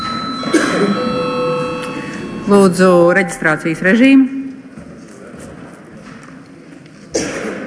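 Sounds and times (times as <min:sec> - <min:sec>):
electric bell ringing in a parliament chamber signalling a break: 0:00.0 - 0:03.9
speech: 0:02.5 - 0:04.4.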